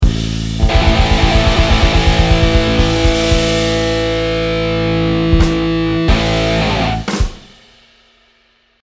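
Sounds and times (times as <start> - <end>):
ending guitar phrase: 0.6 - 7.4.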